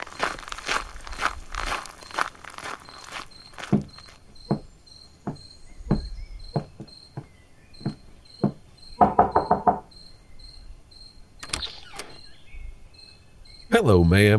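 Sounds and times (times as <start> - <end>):
crickets chirping: 0.0 - 13.9
firm knocks on a door: 4.5 - 9.9
speech: 13.8 - 14.3.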